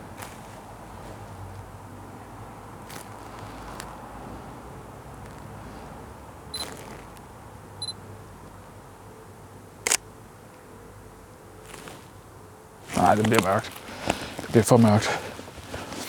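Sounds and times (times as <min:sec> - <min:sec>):
handheld camera shutter clicks: 0:09.8 - 0:10.0
speech: 0:13.0 - 0:13.8, 0:14.5 - 0:15.3.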